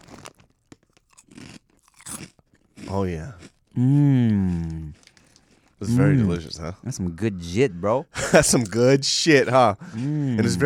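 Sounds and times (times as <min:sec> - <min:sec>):
truffle-flavored Korean crackers being bitten and chewed: 0:00.0 - 0:03.6, 0:04.6 - 0:05.8
speech: 0:02.9 - 0:05.0, 0:05.8 - 0:10.6.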